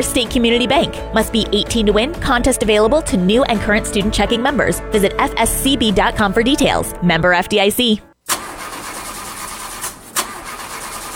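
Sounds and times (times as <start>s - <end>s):
speech: 0.0s - 8.1s
car engine cranking but failing to start: 8.2s - 11.1s.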